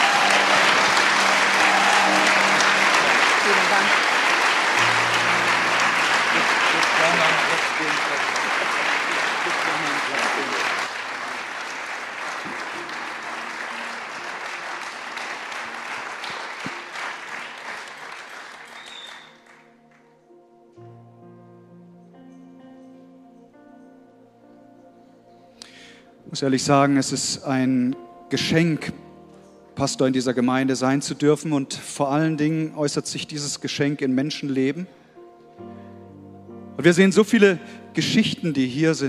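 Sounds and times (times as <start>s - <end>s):
large audience applauding: 0.0s - 20.1s
speech: 26.4s - 29.1s, 29.8s - 35.0s, 36.8s - 39.0s.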